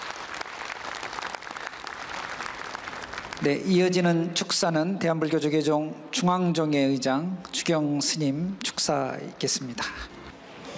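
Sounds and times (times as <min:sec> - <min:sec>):
applause from a large audience: 0:00.0 - 0:03.5
speech: 0:03.4 - 0:10.1.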